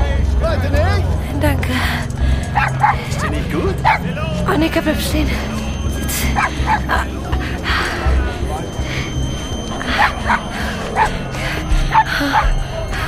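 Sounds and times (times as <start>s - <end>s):
noisy rumbling noise: 0.0s - 13.0s
speech: 0.6s - 8.0s, 11.9s - 12.6s
dog barking and yipping: 2.6s - 4.0s, 9.9s - 11.2s.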